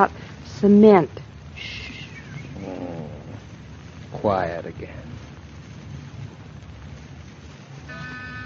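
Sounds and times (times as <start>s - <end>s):
speech: 0.0s - 1.9s, 4.2s - 5.2s
cat purring: 1.6s - 6.7s.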